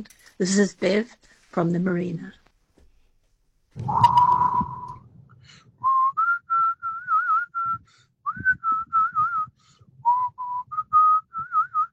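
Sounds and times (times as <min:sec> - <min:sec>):
speech: 0:00.0 - 0:02.4, 0:03.8 - 0:04.2
person whistling a lively tune: 0:03.8 - 0:05.1, 0:05.8 - 0:11.9
faint low rumble: 0:03.8 - 0:06.2.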